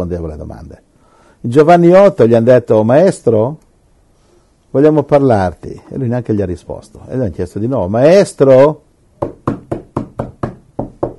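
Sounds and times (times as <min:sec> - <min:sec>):
speech: 0:00.0 - 0:03.6, 0:04.7 - 0:09.6
knocking on an office door with a hollow woody tone: 0:09.2 - 0:11.1.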